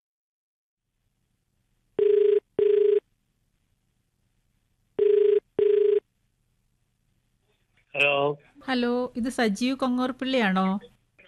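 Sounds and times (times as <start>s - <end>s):
ringback tone of an outgoing call from a radio station phone-in: 2.0s - 3.0s, 5.0s - 6.0s
speech: 8.0s - 10.9s.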